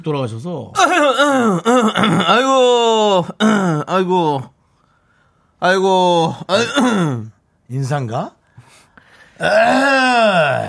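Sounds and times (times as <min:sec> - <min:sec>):
speech: 0:00.0 - 0:04.6, 0:05.6 - 0:08.4, 0:09.4 - 0:10.6
man imitating an old man's gravelly throat clearing: 0:00.8 - 0:02.4, 0:03.3 - 0:03.9, 0:06.5 - 0:07.3.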